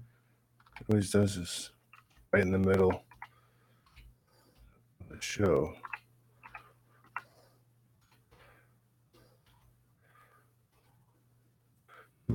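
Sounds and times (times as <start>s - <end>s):
low steady electrical hum: 0.0s - 12.3s
typing on a computer keyboard: 0.6s - 0.9s, 1.8s - 4.1s, 5.4s - 7.3s
speech: 0.8s - 3.1s, 5.2s - 5.9s.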